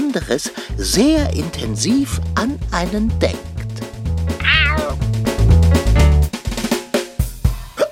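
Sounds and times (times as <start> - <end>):
speech: 0.1 - 3.5
bouncy music with a steady low beat: 0.3 - 7.8
cat meowing: 4.4 - 5.0.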